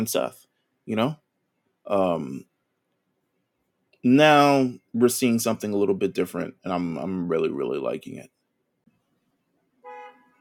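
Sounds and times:
speech: 0.0 - 1.2, 1.8 - 2.5, 4.0 - 8.4
short car horn honk: 9.8 - 10.3.

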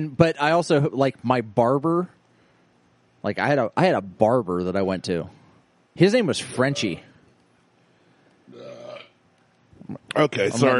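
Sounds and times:
speech: 0.0 - 2.2, 3.2 - 5.4, 6.0 - 7.1, 9.9 - 10.7
loud guttural belch: 8.5 - 9.2.

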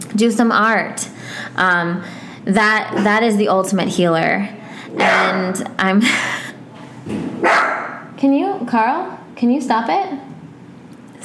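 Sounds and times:
speech: 0.2 - 6.4, 8.2 - 10.2
new puppy barking: 5.0 - 5.5, 7.4 - 8.1.

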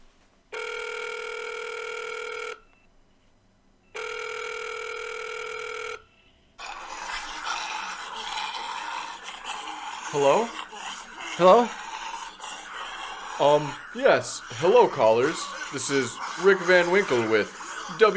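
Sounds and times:
electronic telephone ringing on a news call-in line: 0.5 - 2.7, 3.9 - 6.1
laughter: 6.6 - 18.1
speech: 10.1 - 10.6, 11.4 - 11.8, 13.4 - 18.1.

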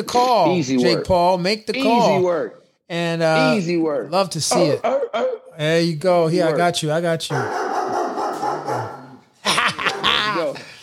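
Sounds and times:
speech: 0.0 - 7.8
dogs barking and yipping: 7.3 - 9.2
laughter: 9.4 - 10.8.

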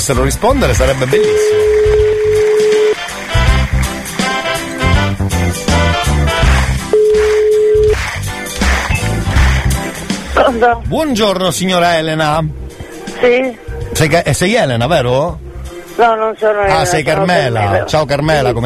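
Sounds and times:
speech: 0.0 - 2.1, 10.6 - 12.6, 13.2 - 15.4, 16.0 - 18.6
busy continuous music-like sound: 0.0 - 18.6
phone line ringback tone while calling a home number: 1.1 - 3.0, 6.9 - 8.0.

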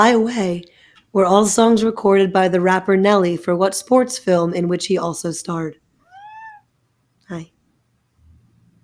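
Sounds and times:
speech: 0.0 - 5.8, 7.3 - 7.5
low steady hum: 0.0 - 8.8
cat meowing: 6.0 - 6.7.

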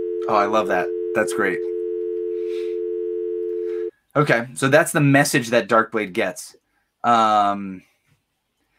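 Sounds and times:
telephone busy tone after a hang-up: 0.0 - 3.9
speech: 0.3 - 1.8, 4.2 - 7.9.

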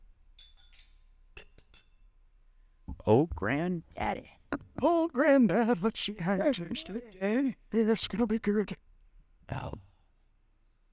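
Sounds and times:
glasses clinking in a toast: 0.3 - 2.1
speech: 3.1 - 8.9, 9.5 - 9.9.

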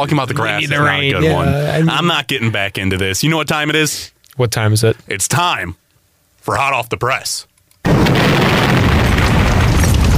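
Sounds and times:
speech: 0.0 - 5.8, 6.4 - 9.4
hand grenade exploding with a boom and roaring rumble: 7.9 - 10.1.

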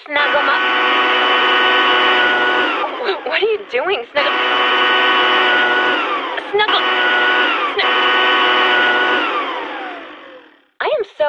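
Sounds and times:
200-mile-per-hour cordless leaf blower running: 0.0 - 10.8
speech: 3.8 - 4.6.

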